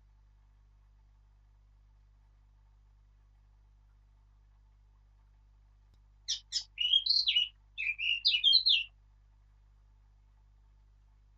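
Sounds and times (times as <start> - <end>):
Eurasian blackcap singing, Sylvia atricapilla: 6.3 - 8.9.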